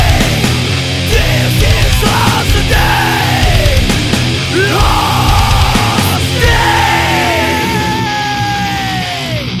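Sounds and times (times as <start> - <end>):
dense harsh wall of distorted noise: 0.0 - 9.5
person screaming: 1.8 - 3.7, 4.5 - 9.5.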